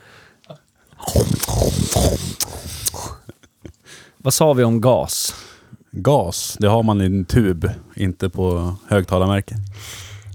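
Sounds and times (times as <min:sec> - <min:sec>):
crunchy snack sticks being chewed: 0:01.0 - 0:03.2
quiet clicks and mouth noises: 0:01.0 - 0:03.4, 0:09.1 - 0:10.3
speech: 0:04.2 - 0:10.0.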